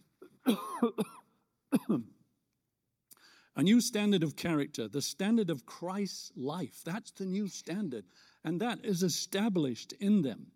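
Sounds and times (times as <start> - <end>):
person coughing: 0.2 - 2.2
speech: 0.5 - 1.1, 3.6 - 10.5.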